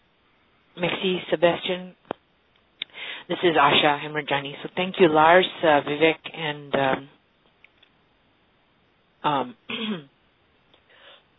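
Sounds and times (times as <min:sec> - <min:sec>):
speech: 0:00.8 - 0:02.0, 0:03.3 - 0:07.2, 0:09.2 - 0:10.1
person clearing throat after something went down the wrong way: 0:09.7 - 0:10.1.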